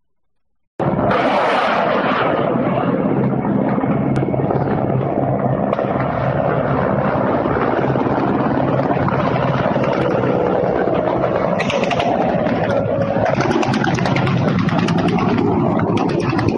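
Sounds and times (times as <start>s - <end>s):
military helicopters roaring overhead: 0.8s - 16.5s.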